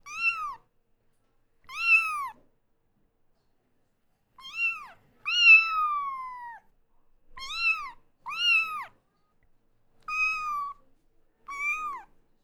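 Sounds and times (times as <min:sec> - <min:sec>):
kitten meowing: 0:00.1 - 0:00.6, 0:01.7 - 0:02.4, 0:04.4 - 0:06.6, 0:07.4 - 0:08.9, 0:10.0 - 0:10.8, 0:11.5 - 0:12.1.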